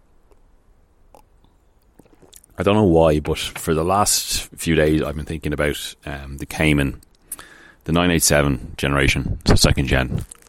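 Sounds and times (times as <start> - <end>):
person sipping tea: 1.1 - 2.6, 7.2 - 7.7
swallowing: 1.1 - 2.6
speech: 2.6 - 7.1, 7.8 - 10.4.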